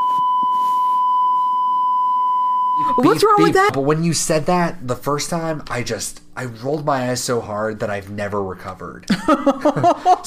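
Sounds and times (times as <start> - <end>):
high-pitched censor bleep masking a spoken word: 0.0 - 3.4
speech: 2.9 - 10.2
laughter: 9.1 - 10.2.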